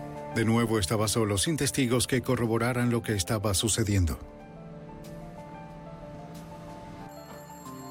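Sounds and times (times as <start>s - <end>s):
speech: 0.3s - 4.4s
telephone ringing: 7.1s - 7.8s.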